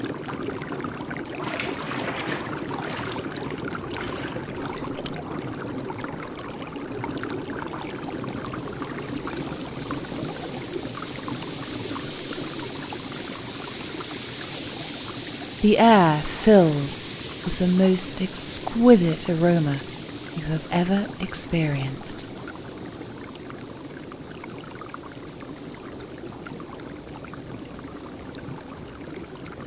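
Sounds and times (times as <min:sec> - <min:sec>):
liquid pouring into a pool of water: 0:00.0 - 0:20.4
speech: 0:15.6 - 0:19.9, 0:20.5 - 0:22.3.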